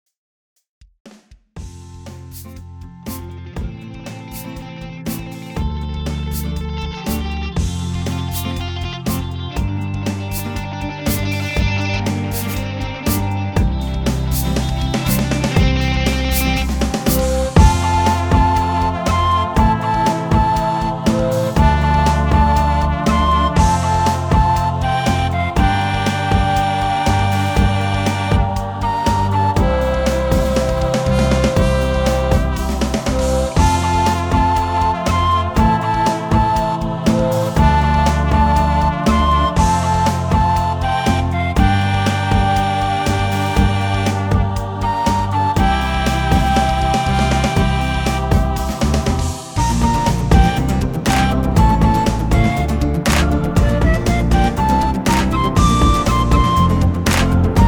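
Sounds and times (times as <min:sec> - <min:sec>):
flute in instrumental music: 0:06.4 - 0:57.6
trumpet in instrumental music: 0:16.1 - 0:57.6.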